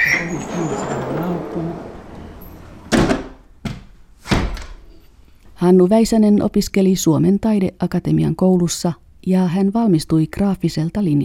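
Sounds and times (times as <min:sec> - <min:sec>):
door pulled shut on the 37th floor of a building: 0:00.0 - 0:04.8
speech: 0:05.7 - 0:11.2.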